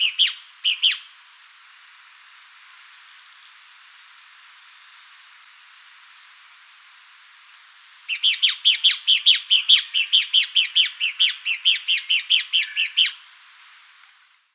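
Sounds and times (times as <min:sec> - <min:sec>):
Fuscous Flycatcher (Cnemotriccus fuscatus) calling: 0:00.0 - 0:01.1, 0:08.1 - 0:13.4.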